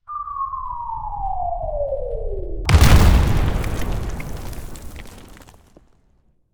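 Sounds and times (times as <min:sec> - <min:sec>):
artillery impact: 0:02.7 - 0:05.8.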